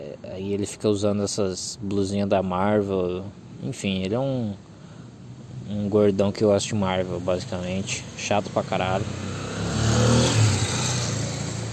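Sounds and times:
steady low road hum: 0.0 - 11.7
speech: 0.4 - 4.7, 5.7 - 9.4
car engine rumbling past on a busy street by a university: 5.4 - 11.7.

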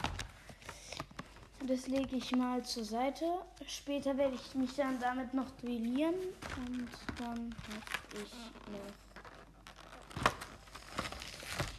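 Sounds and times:
speech: 1.6 - 9.0
foil trading card pack tearing open: 9.7 - 11.7.

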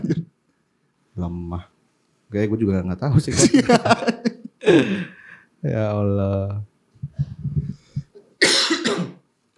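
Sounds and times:
person coughing harshly: 0.0 - 0.3, 8.4 - 9.2
speech: 1.2 - 7.3
laughter: 3.3 - 5.1.

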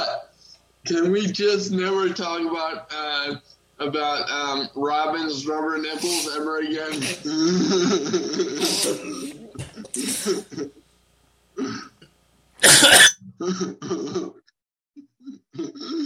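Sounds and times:
speech: 0.9 - 9.4, 10.0 - 10.8, 12.6 - 14.4
person coughing in a harsh fit: 6.9 - 10.7, 11.6 - 12.0, 12.6 - 14.4.

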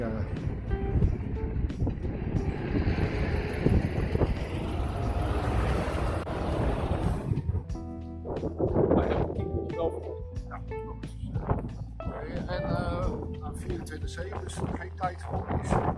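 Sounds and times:
wind noise: 0.0 - 15.9
car passing by outdoors: 0.5 - 7.7.

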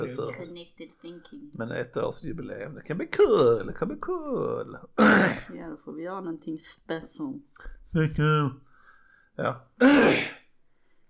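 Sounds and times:
speech: 0.0 - 8.7, 9.4 - 10.4
loud throat clearing: 9.8 - 10.4.

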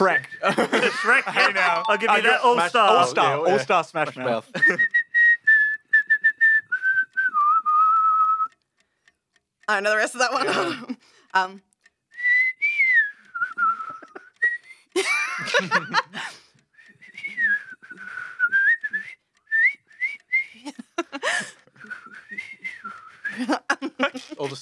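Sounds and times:
speech: 0.0 - 5.0, 9.7 - 11.7, 15.4 - 16.2, 24.4 - 24.6
laughter: 0.4 - 1.9, 4.4 - 4.9, 10.4 - 11.0, 13.7 - 14.4, 15.0 - 16.4, 20.6 - 21.7, 23.3 - 24.6
person whistling a wavering melody: 4.6 - 8.6, 12.2 - 14.9, 16.7 - 20.8, 21.7 - 23.5.

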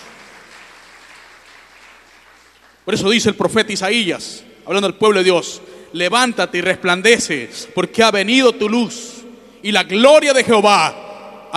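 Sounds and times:
crowd applauding: 0.0 - 2.9
speech: 2.9 - 11.5.

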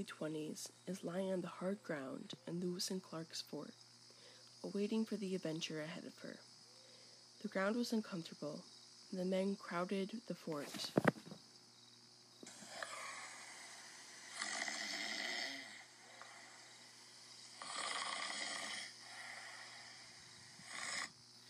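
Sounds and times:
speech: 0.0 - 3.8, 4.6 - 6.5, 7.4 - 11.2
low constant hum: 0.0 - 21.4
men snoring in their sleep: 12.4 - 21.4.

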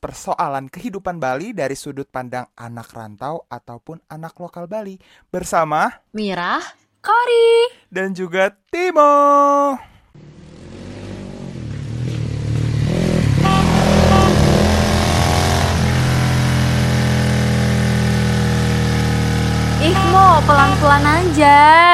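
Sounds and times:
speech: 0.0 - 10.4, 20.4 - 21.9
motorcycle engine running: 10.2 - 21.8.

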